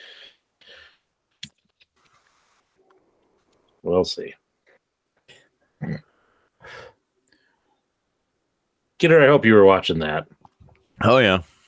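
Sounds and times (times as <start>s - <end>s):
speech: 3.8s - 4.4s, 9.0s - 10.4s, 11.0s - 11.5s
person snorting beer foam up the nose: 5.3s - 7.0s.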